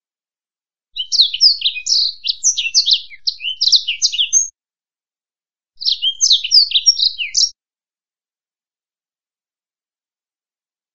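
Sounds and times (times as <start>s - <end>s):
Black-throated canary song: 0.9s - 4.5s, 5.8s - 7.6s.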